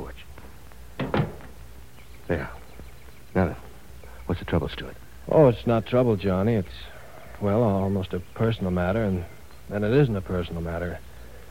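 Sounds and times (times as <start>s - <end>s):
door swinging shut onto a porch: 1.0s - 1.7s
heavier door latching bang: 1.0s - 1.8s
speech: 2.3s - 2.6s, 4.4s - 11.1s.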